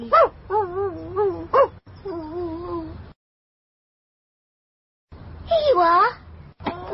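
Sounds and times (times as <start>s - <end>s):
dog yipping: 0.1s - 1.8s.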